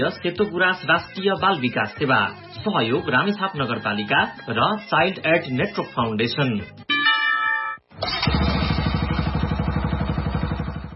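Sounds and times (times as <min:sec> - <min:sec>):
speech: 0:00.0 - 0:06.8, 0:08.0 - 0:08.4
old motorcycle engine starting and idling after servicing: 0:08.0 - 0:10.9.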